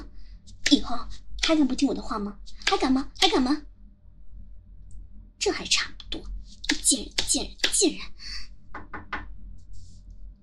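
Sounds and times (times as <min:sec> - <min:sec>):
speech: 0:00.7 - 0:03.7, 0:05.4 - 0:08.5
knocking on a door: 0:08.7 - 0:09.3.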